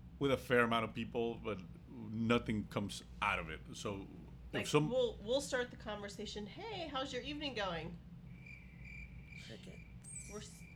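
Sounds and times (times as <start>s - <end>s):
speech: 0.2s - 8.1s, 9.4s - 10.6s
crickets chirping: 8.2s - 10.7s.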